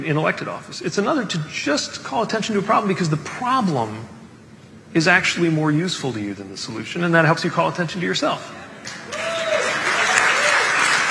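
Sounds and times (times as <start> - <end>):
speech: 0.0 - 4.2, 4.9 - 9.0
audience applause at a political speech: 8.8 - 11.0.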